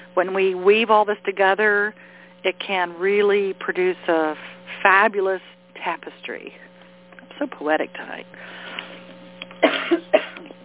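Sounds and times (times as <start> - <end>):
faint steady electrical hum: 0.0 - 10.6
speech: 0.2 - 6.7, 7.4 - 8.6
person coughing: 9.6 - 10.6.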